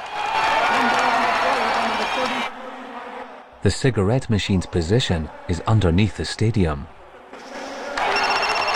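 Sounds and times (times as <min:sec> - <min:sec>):
stadium crowd cheering at American football game: 0:00.0 - 0:08.7
speech: 0:03.6 - 0:07.0
mobile phone ringing with high electronic tone: 0:08.0 - 0:08.7.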